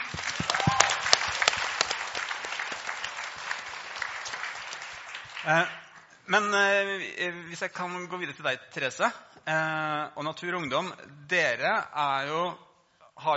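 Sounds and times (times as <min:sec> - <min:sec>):
audience applause: 0:00.0 - 0:05.8
speech: 0:05.5 - 0:12.6, 0:13.2 - 0:13.3.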